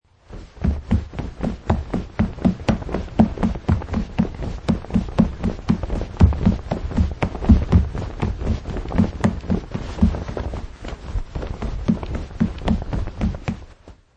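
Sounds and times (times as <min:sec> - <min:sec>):
man in jeans and hiking shoes jogging on carpet: 0:00.2 - 0:14.0.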